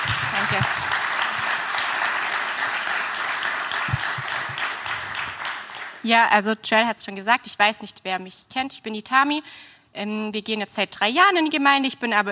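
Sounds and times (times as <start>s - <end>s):
audience applause welcoming a speaker: 0.0s - 6.0s
speech: 0.5s - 1.0s, 6.0s - 12.2s.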